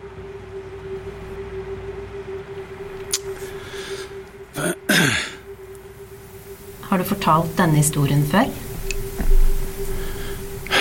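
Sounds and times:
steady low electrical hum: 0:00.0 - 0:10.7
person clearing throat: 0:04.6 - 0:05.4
speech: 0:06.9 - 0:08.7.

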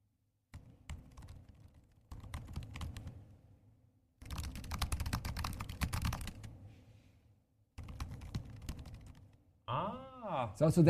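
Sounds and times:
rapid typing on laptop keyboards: 0:00.5 - 0:03.2, 0:04.2 - 0:06.5, 0:07.8 - 0:09.4
speech: 0:09.7 - 0:10.8.

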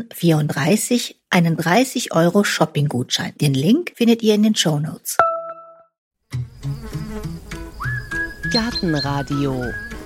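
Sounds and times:
speech: 0:00.0 - 0:05.3, 0:08.5 - 0:09.9
brief tone: 0:05.2 - 0:05.9
bee buzzing: 0:06.3 - 0:08.0.

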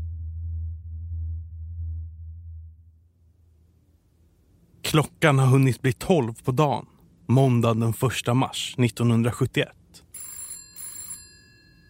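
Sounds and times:
faint low rumble: 0:00.0 - 0:07.6
speech: 0:04.9 - 0:09.8
old-style telephone bell ringing: 0:10.1 - 0:11.8.

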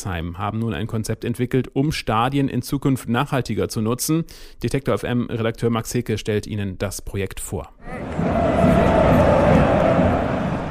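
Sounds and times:
speech: 0:00.0 - 0:08.3
football stadium crowd cheering: 0:07.8 - 0:10.6.

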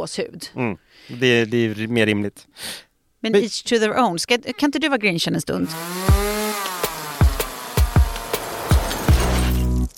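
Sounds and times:
speech: 0:00.0 - 0:06.4
chainsaw engine revving and cutting: 0:05.6 - 0:09.8.

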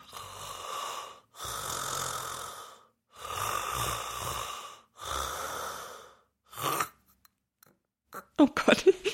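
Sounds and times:
person imitating snoring with a collapsing airway: 0:00.0 - 0:07.0
speech: 0:08.4 - 0:09.1.

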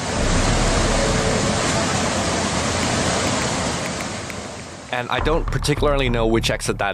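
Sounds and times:
floodwater pouring down into underground subway station: 0:00.0 - 0:05.2
speech: 0:05.0 - 0:06.9.

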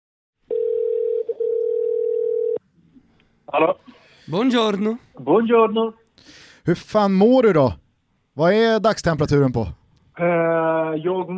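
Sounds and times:
phone call ringing tone: 0:00.5 - 0:02.6
faint noise: 0:00.5 - 0:11.3
speech: 0:03.5 - 0:07.8, 0:08.4 - 0:11.3.

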